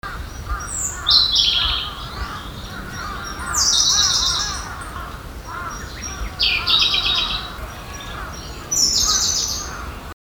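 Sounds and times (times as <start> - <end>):
chorus of lower-pitched chirping birds: 0.1 - 10.1
steady background hiss: 0.1 - 10.1
Siberian blue robin song of loud high rapid rattling trill phrases: 0.9 - 8.3.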